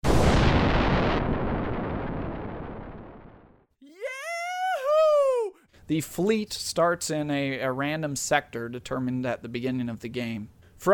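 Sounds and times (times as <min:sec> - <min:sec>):
nuclear bomb explosion in a video game: 0:00.0 - 0:03.7
person calling out in a video game: 0:03.8 - 0:05.6
speech: 0:05.9 - 0:10.9.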